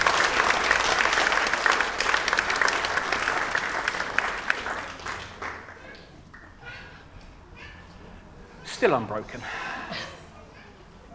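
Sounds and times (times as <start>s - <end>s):
crowd clapping in sustained applause: 0.0s - 6.6s
speech: 8.8s - 10.1s.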